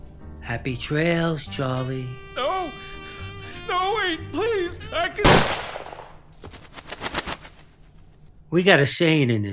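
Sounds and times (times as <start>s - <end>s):
speech: 0.5s - 2.9s, 3.7s - 5.7s, 8.5s - 9.5s
gunfire from a handgun in a horror drama: 5.3s - 6.2s.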